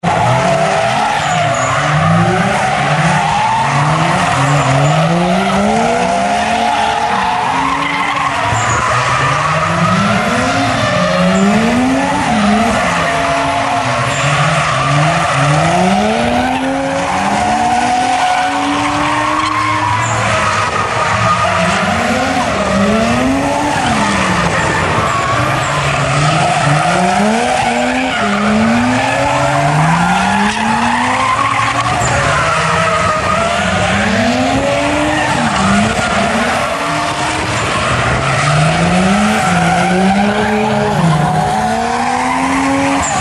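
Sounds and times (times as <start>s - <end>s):
cars drifting: 0.0s - 43.2s.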